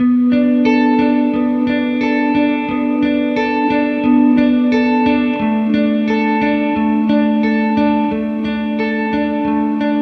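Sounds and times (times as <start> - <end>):
sad wrenching guitar loop: 0.0 - 9.9.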